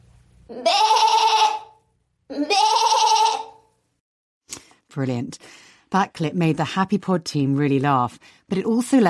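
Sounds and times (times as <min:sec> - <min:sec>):
woman imitating goat with drawn-out quavering bleats: 0:00.5 - 0:03.6
speech: 0:05.0 - 0:09.0.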